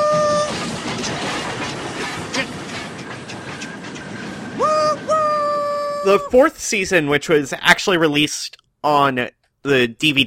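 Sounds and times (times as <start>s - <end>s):
train wheels clacking over rail joints: 0.0s - 7.4s
departing train rolling with a steady rumble: 0.0s - 8.1s
speech: 6.0s - 10.2s.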